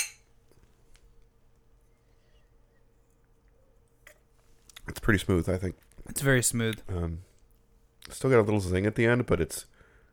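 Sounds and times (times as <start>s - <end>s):
glasses clinking in a toast: 0.0s - 0.3s
quiet steady room hum: 0.0s - 10.1s
speech: 5.0s - 7.3s, 8.1s - 9.7s.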